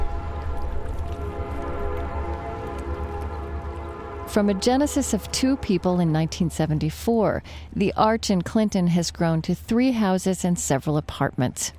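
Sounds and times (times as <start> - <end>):
train whistle from passing rail line: 0.0 - 7.1
low rumbling rail noise: 0.0 - 9.8
speech: 4.4 - 11.7.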